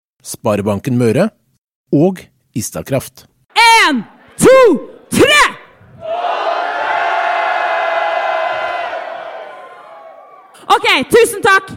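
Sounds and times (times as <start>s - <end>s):
speech: 0.2s - 5.4s, 10.8s - 11.7s
live crowd roaring, cheering and shouting: 4.2s - 10.7s.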